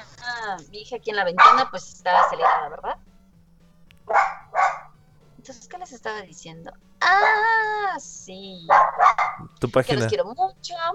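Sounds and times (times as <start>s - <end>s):
low steady hum: 0.0s - 10.9s
speech: 0.5s - 3.0s, 5.4s - 10.9s
dog barking with full-bodied woofs: 1.3s - 3.0s, 4.1s - 5.0s, 8.7s - 9.4s.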